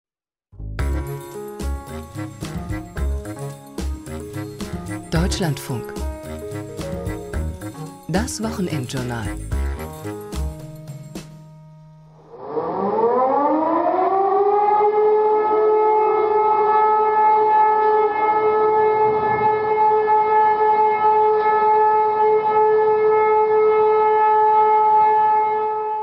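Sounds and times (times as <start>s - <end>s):
broadcast jingle: 0.8s - 10.6s
speech: 5.2s - 6.0s, 8.1s - 10.2s
civil defense siren continuous steady wailing tone: 12.1s - 26.0s.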